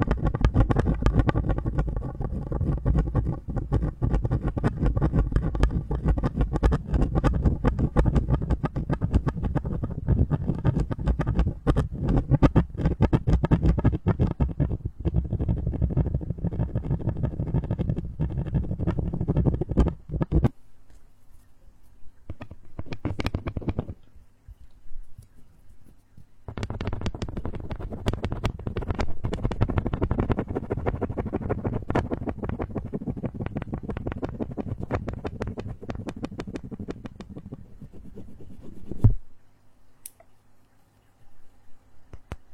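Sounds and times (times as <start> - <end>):
dense rough rumbling and crackling scrape of strange material: 0.0 - 20.5, 26.5 - 39.0
faint hum: 0.0 - 42.5.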